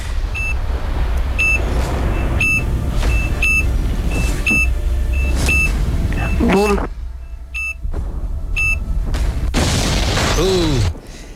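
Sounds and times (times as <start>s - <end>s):
steady rumbling noise: 0.0s - 11.3s
sharp electronic countdown beeps timing a game: 0.3s - 0.6s, 1.4s - 7.8s, 8.6s - 8.8s
speech: 6.6s - 6.9s.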